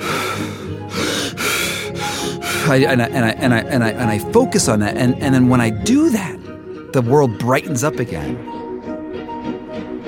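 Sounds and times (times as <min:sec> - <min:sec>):
forceful rhythmic breathing technique: 0:00.0 - 0:03.1
speech: 0:02.7 - 0:08.6.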